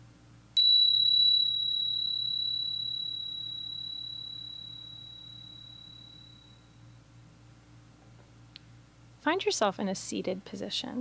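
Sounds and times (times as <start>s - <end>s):
low hum: 0.0s - 10.9s
meditation bell rung once: 0.6s - 6.6s
speech: 9.2s - 10.9s.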